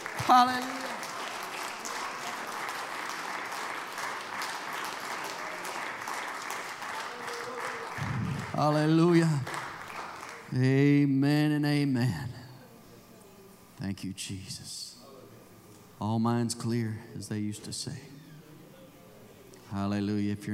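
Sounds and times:
crowd clapping: 0.0 - 10.8
speech: 0.3 - 0.8, 8.6 - 9.5, 10.5 - 12.4, 13.8 - 15.0, 16.0 - 18.1, 19.7 - 20.5.

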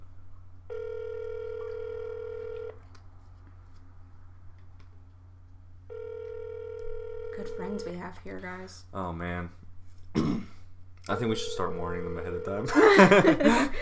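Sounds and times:
low hum: 0.0 - 13.8
outgoing phone call ringback tones ringing unanswered: 0.7 - 2.7, 5.9 - 7.9, 11.2 - 12.8
speech: 7.5 - 9.6, 11.1 - 13.8
laughter: 12.7 - 13.8.

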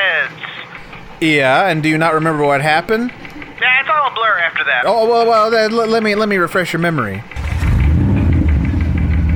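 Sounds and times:
faint rhythmic ticking: 0.7 - 9.3
speech: 1.2 - 7.4
car pulling away with a low engine rumble: 7.3 - 9.3.

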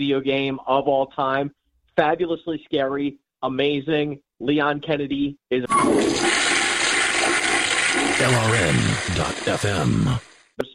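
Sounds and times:
speech: 0.0 - 6.4, 8.2 - 10.7
toilet flushing: 5.7 - 10.4.

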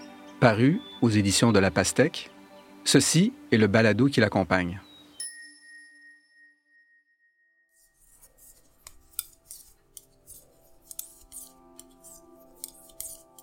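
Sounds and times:
speech: 0.4 - 4.8
lingering chime-like tone: 4.8 - 7.7
knitting needles clicking and clattering: 8.1 - 13.4.

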